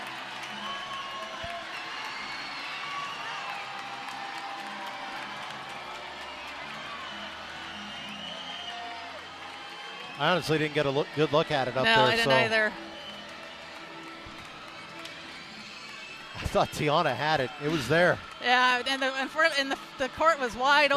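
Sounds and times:
crowd of spectators cheering at a volleyball match: 0.0 - 20.9
people clapping: 0.0 - 20.9
whistles: 0.4 - 3.8, 6.2 - 10.2, 12.8 - 13.8, 14.7 - 16.6
speech: 10.2 - 12.9, 16.5 - 20.9.

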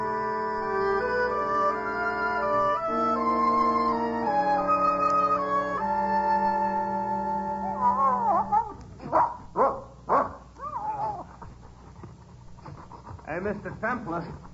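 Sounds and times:
sustained tonal background: 0.0 - 9.0
dog whining and yelping: 7.7 - 11.6
dog barking: 8.0 - 11.2
dog panting: 11.0 - 14.5
speech: 13.4 - 14.4.

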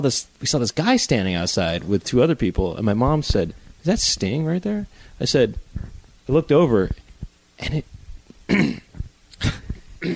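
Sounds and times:
speech: 0.0 - 7.0, 7.6 - 7.9
harsh breathy coughs: 8.5 - 10.1.

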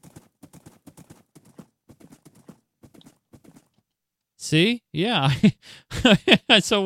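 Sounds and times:
horse hooves clip-clopping: 0.0 - 3.8
speech: 4.4 - 6.8.

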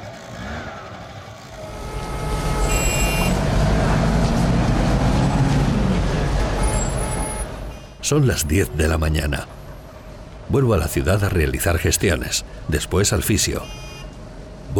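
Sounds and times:
motorcycle engine revving up: 0.0 - 7.2
steady road noise: 0.0 - 14.7
speech: 8.1 - 9.6, 10.5 - 13.9.

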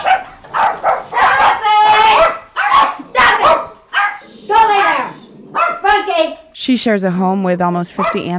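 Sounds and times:
several dogs barking and yipping excitedly in a home with seven dogs: 0.0 - 6.3, 8.0 - 8.3
speech: 6.6 - 8.3.

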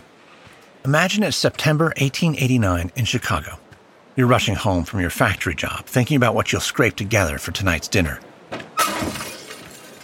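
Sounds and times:
speech: 0.8 - 3.6, 4.2 - 8.3
glass shattering: 8.8 - 10.0.

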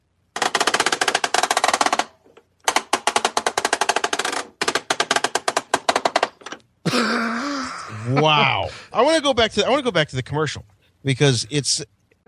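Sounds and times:
ratcheting plastic clicks from a rotating toy spaceship gun turret: 0.4 - 6.7
speech: 8.0 - 11.9.

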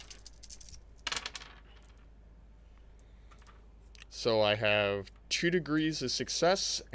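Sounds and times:
dice being rolled: 0.0 - 2.1
speech: 4.2 - 6.9.

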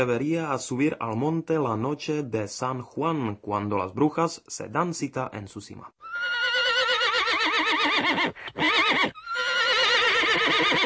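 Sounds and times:
speech: 0.0 - 6.4
horse neighing: 6.0 - 10.8.

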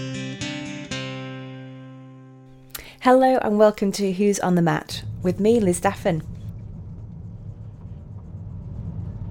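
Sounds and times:
speech: 3.1 - 6.3
car engine rumble inside a moving car: 4.7 - 9.2
faint road noise: 4.7 - 9.2.

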